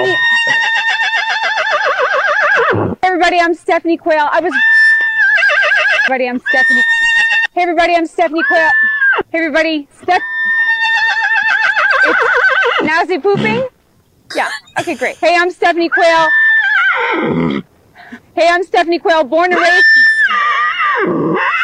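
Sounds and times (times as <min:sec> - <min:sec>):
loud horse whinny: 0:00.0 - 0:03.0, 0:04.5 - 0:07.5, 0:08.4 - 0:09.3, 0:10.1 - 0:13.7, 0:15.9 - 0:17.7, 0:19.6 - 0:21.6
speech: 0:03.4 - 0:04.7, 0:06.1 - 0:07.0, 0:07.6 - 0:10.3, 0:12.8 - 0:13.7, 0:14.3 - 0:16.4, 0:17.1 - 0:17.7, 0:18.4 - 0:19.9.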